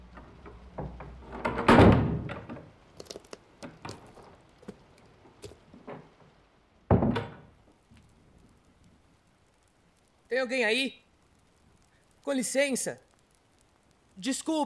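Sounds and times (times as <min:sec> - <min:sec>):
knocks and clatters: 0:00.0 - 0:04.4
door slamming shut: 0:00.8 - 0:02.7, 0:06.9 - 0:07.5
speech: 0:10.3 - 0:11.0, 0:12.2 - 0:13.1, 0:14.2 - 0:14.6.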